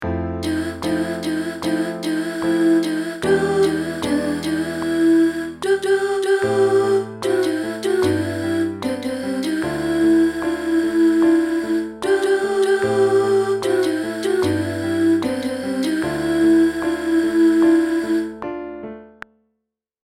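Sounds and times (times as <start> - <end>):
soprano voice in a transition passage: 0.4 - 18.4.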